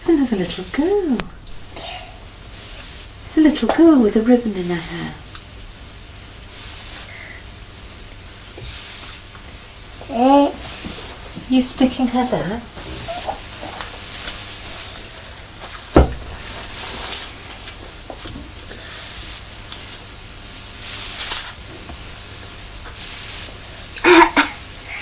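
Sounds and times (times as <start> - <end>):
steady hum: 0.0 - 24.9
speech: 0.1 - 1.4, 3.4 - 5.2, 10.1 - 10.7, 11.5 - 12.9
child fake coughing: 24.0 - 24.5.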